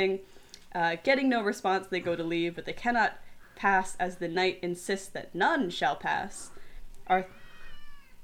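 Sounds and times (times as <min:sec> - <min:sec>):
speech: 0:00.0 - 0:06.5, 0:07.1 - 0:07.4
black cat meowing: 0:07.2 - 0:08.2.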